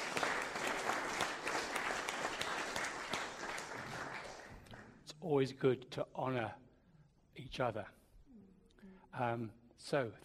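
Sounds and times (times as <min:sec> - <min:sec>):
audience applause with many hands clapping: 0:00.0 - 0:05.0
speech: 0:05.2 - 0:06.6, 0:07.4 - 0:08.0, 0:09.2 - 0:10.2.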